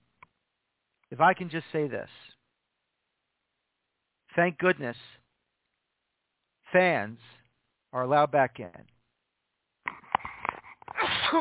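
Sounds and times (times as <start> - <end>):
speech: 1.1 - 2.3, 4.4 - 5.2, 6.7 - 8.9
person sneezing during pollen season: 10.9 - 11.3.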